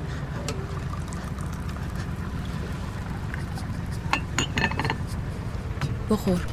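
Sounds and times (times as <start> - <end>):
steady low drone of a boat engine: 0.0 - 6.5
tea poured into a glass aboard a ship: 0.6 - 5.0
glassware clinking: 4.1 - 5.0
speech: 6.1 - 6.5.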